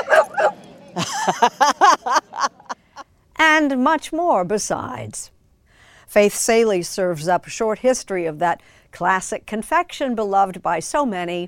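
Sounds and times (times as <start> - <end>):
dog barking and yipping: 0.0 - 0.6
laughter: 0.0 - 2.8
speech: 1.0 - 1.8, 3.6 - 5.4, 6.1 - 11.4.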